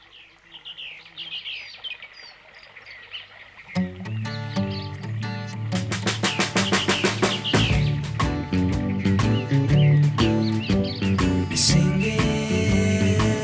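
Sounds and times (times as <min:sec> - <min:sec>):
birds chirping and twittering: 0:00.0 - 0:13.4
loud music: 0:05.0 - 0:13.4.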